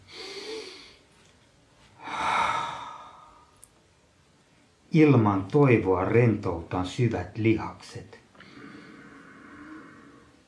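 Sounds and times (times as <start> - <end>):
deep breathing during a guided relaxation: 0.0 - 1.1, 2.0 - 3.6, 8.3 - 10.4
speech: 4.9 - 8.2.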